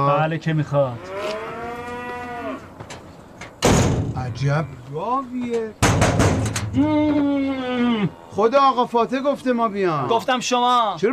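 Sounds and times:
speech: 0.0s - 1.5s, 4.3s - 11.1s
cow mooing at a dairy farm: 1.0s - 2.7s, 6.8s - 8.2s.

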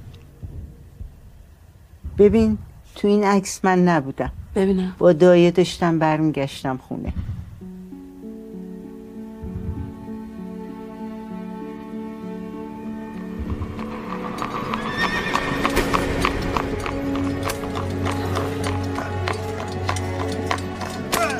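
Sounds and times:
speech: 2.2s - 7.2s
horse hooves clip-clopping as a horse-drawn carriage passes: 13.4s - 21.3s.

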